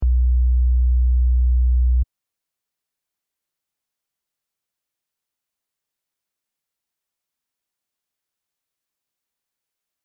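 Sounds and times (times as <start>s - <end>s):
synth bass: 0.0s - 2.0s.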